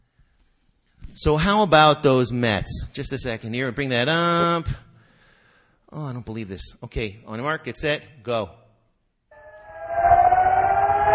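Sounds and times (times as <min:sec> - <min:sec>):
speech: 0:01.2 - 0:04.8, 0:05.9 - 0:08.6
siren wailing: 0:09.3 - 0:11.1.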